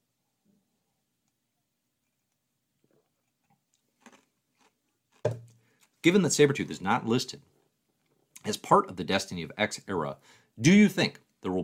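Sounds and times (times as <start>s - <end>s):
person sipping a drink: 2.0s - 5.9s
speech: 5.2s - 5.4s, 6.0s - 7.5s, 8.5s - 11.6s.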